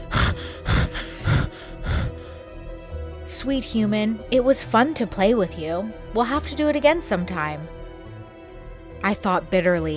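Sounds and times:
person panting heavily after falling to the ground: 0.0 - 2.5
speech: 3.4 - 7.8, 9.0 - 9.9.

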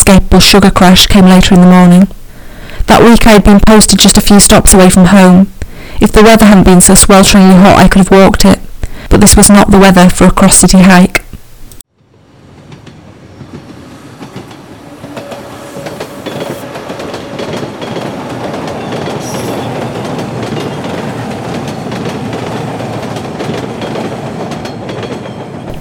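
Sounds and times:
speech: 0.1 - 2.2, 2.9 - 11.2
subway train rumbling along the rails: 12.1 - 25.7
faint metallic squeal of subway train: 14.8 - 16.8, 19.2 - 19.7.

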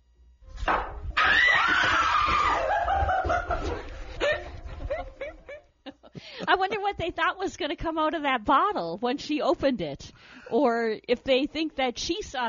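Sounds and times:
group of friends screaming: 1.2 - 3.3
group of friends laughing: 2.4 - 6.8
speech: 7.0 - 12.4.

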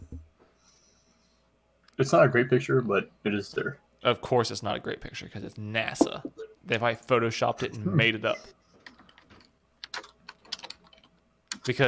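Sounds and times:
speech: 2.0 - 8.6, 11.6 - 11.8
fingers typing on a computer keyboard: 8.8 - 11.8.

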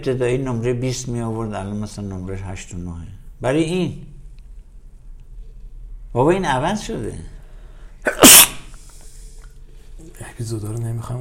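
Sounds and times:
speech: 0.0 - 4.1, 6.1 - 7.4, 10.4 - 11.1
faint hiss: 0.0 - 11.1
sneeze: 8.0 - 8.8.

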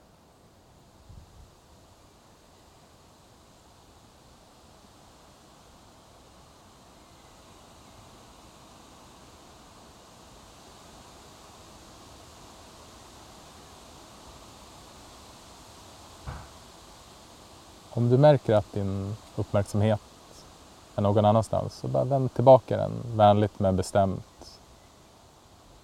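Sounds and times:
birch leaves rustling in the wind: 0.0 - 25.8
faint knocks: 16.3 - 16.6
speech: 18.0 - 20.1, 21.0 - 24.6.

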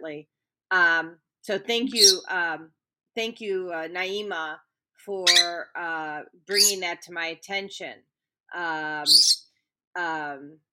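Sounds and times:
speech: 0.0 - 9.4, 10.0 - 10.7
birds chirping with buzzy calls: 1.7 - 2.3, 5.3 - 5.6, 6.5 - 6.8, 9.1 - 9.4.

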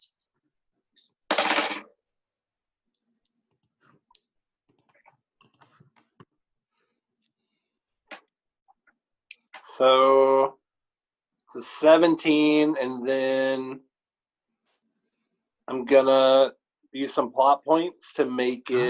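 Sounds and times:
dice rattling: 1.3 - 1.8
dice clattering across a hard table surface: 1.3 - 1.9
speech: 9.8 - 10.6, 11.6 - 13.9, 15.7 - 18.8.

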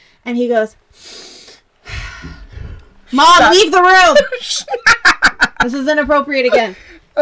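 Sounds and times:
speech: 0.2 - 1.3, 3.1 - 7.2
person imitating a man sniffing the ocean air: 0.9 - 2.2
laughter: 3.5 - 6.0.

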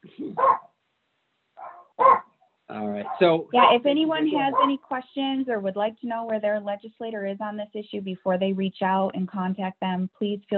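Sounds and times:
dog barking: 0.4 - 0.6, 1.6 - 2.3, 2.9 - 3.8, 4.5 - 4.7
speech: 2.8 - 10.5.

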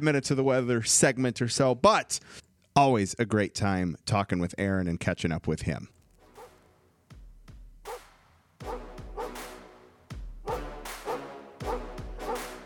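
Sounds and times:
speech: 0.0 - 6.0
punchy electronic beat with deep thumping kicks as segment intro music: 7.1 - 8.0, 8.6 - 12.6
sharp dog barks in intro music: 8.6 - 9.4, 10.5 - 12.6.

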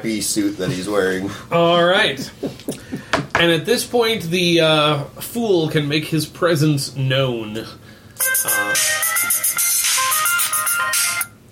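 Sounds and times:
speech: 0.0 - 2.8, 3.4 - 7.8, 8.4 - 9.7
electronic phone ringtone: 8.2 - 11.3.

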